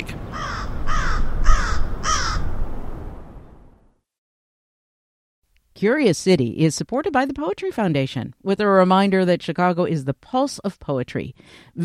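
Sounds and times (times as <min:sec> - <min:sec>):
crow giving harsh caws: 0:00.3 - 0:02.6
speech: 0:05.8 - 0:11.8.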